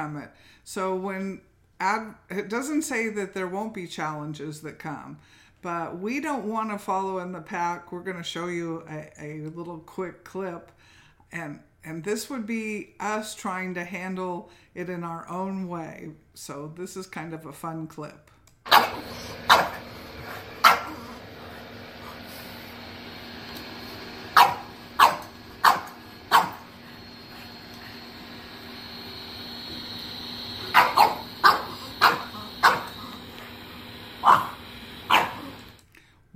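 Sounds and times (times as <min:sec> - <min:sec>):
speech: 0:00.0 - 0:19.8
dog barking: 0:18.7 - 0:19.9, 0:20.6 - 0:21.0, 0:24.4 - 0:26.7, 0:30.6 - 0:33.2, 0:34.2 - 0:35.6.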